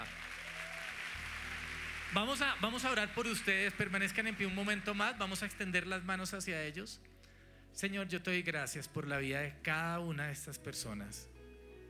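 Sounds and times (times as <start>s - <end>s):
audience applause: 0.0s - 5.2s
speech: 2.1s - 11.3s.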